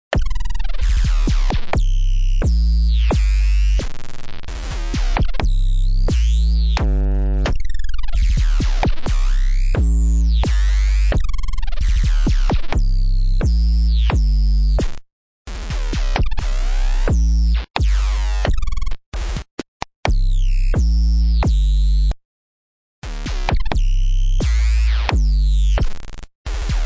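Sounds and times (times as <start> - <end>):
distorted bass loop: 0.1 - 15.0, 15.6 - 19.5, 20.1 - 22.2, 23.0 - 26.8.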